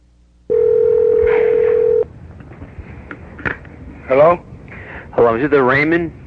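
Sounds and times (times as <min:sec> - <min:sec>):
telephone dial tone: 0:00.5 - 0:02.1
speech: 0:04.1 - 0:04.5, 0:05.2 - 0:06.2.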